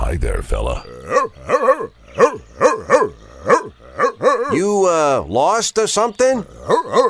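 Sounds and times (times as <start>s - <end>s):
speech: 0.1s - 2.0s, 4.5s - 7.0s
dog barking: 1.1s - 4.6s, 6.7s - 7.0s.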